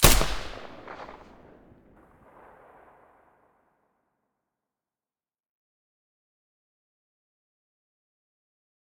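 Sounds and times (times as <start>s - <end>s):
suppressed rifle shot: 0.0s - 3.0s.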